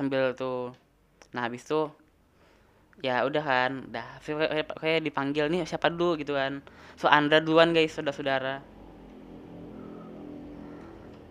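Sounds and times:
speech: 0.0s - 2.0s, 3.0s - 8.7s
motorcycle engine revving outside: 8.6s - 11.2s.

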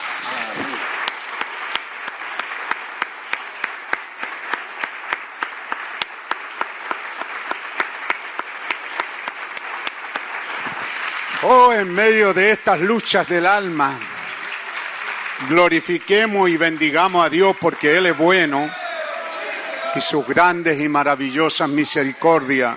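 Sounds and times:
church audience applauding: 0.0s - 22.7s
speech: 11.5s - 14.1s, 15.4s - 18.8s, 19.9s - 22.7s.

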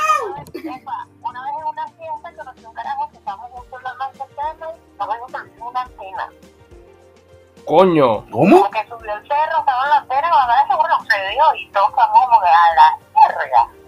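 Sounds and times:
person imitating a cat meowing: 0.0s - 0.5s
speech: 7.7s - 10.6s, 11.2s - 13.7s.

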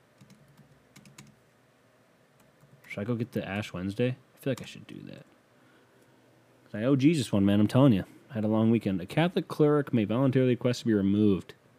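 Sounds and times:
typing on a computer keyboard: 0.2s - 1.4s
speech: 2.9s - 5.3s, 6.7s - 11.6s.

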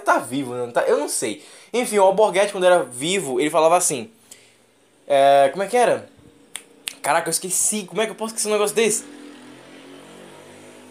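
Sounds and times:
speech: 0.1s - 4.2s, 5.1s - 6.1s, 7.1s - 9.2s
motorcycle engine droning: 8.2s - 10.9s.

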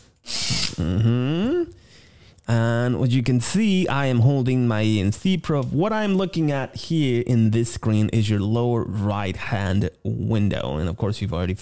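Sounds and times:
power drill motor whining: 0.2s - 0.8s
speech: 0.8s - 1.2s, 2.5s - 11.6s.

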